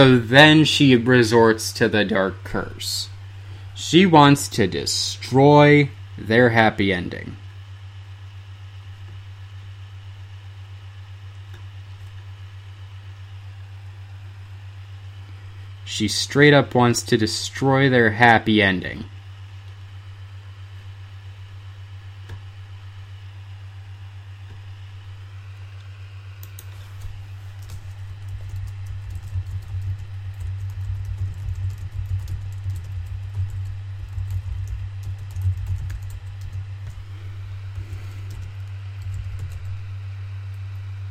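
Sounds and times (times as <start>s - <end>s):
speech: 0.0s - 3.1s, 3.8s - 7.4s, 15.9s - 19.1s
constant low electrical hum: 0.0s - 41.0s
typing on a computer keyboard: 27.6s - 36.6s.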